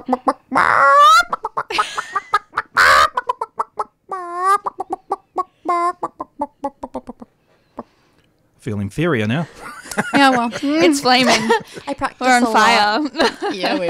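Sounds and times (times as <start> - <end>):
speech: 0.0 - 0.6, 8.7 - 13.8
person in a studio imitating a clucking chicken: 0.0 - 1.8, 2.6 - 7.3
laughter: 1.7 - 2.6, 9.3 - 13.8.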